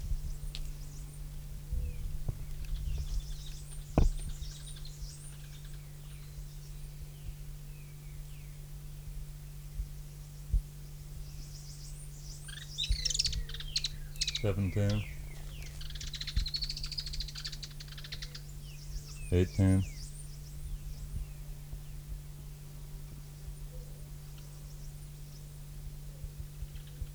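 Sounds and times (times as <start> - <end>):
several birds chirping: 0.0 - 8.5, 11.2 - 22.0
steady low electrical hum: 0.0 - 27.1
speech: 14.4 - 15.2, 19.3 - 19.9.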